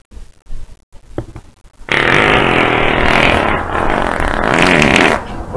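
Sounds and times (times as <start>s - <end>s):
fart: 1.8s - 5.4s.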